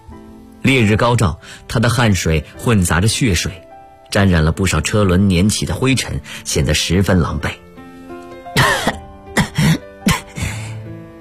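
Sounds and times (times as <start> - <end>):
speech: 0.7 - 7.6
bleeding woman coughing in the dust under a hot sun: 8.6 - 10.6.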